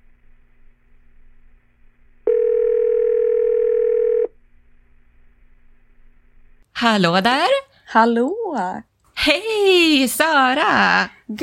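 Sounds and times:
telephone ringback tone while calling: 0:02.3 - 0:04.4
speech: 0:06.8 - 0:11.4.

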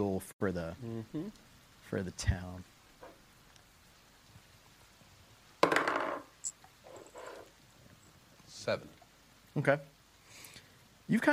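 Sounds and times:
speech: 0:00.0 - 0:02.8, 0:08.6 - 0:09.0, 0:09.6 - 0:09.9, 0:11.1 - 0:11.3
dice clattering across a table during a tabletop role-playing game: 0:05.6 - 0:06.3.

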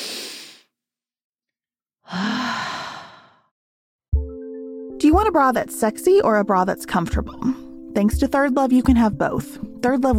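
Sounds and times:
deep reset breath: 0:00.0 - 0:00.7, 0:02.0 - 0:03.5
long sighing exhale: 0:02.1 - 0:03.5
speech: 0:05.1 - 0:10.1.

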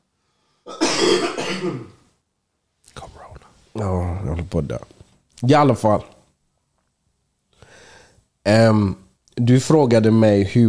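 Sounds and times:
rough throat clearing rolling into a raspy cough: 0:00.7 - 0:02.0
speech: 0:01.1 - 0:02.0, 0:03.8 - 0:06.2, 0:08.4 - 0:10.6.

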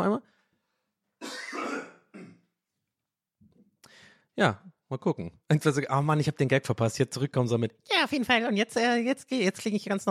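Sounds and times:
person coughing to clear their throat: 0:01.2 - 0:02.5
speech: 0:04.4 - 0:10.0.

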